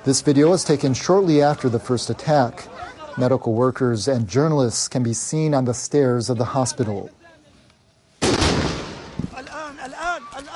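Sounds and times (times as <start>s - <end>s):
speech: 0.0s - 7.2s
powerful explosion from an airstrike: 8.2s - 9.3s.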